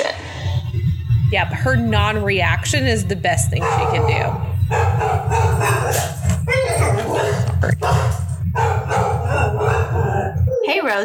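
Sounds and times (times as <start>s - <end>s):
constant low hum: 0.0s - 11.0s
speech: 1.3s - 6.2s
agitated dog barking and yelping: 3.5s - 10.8s.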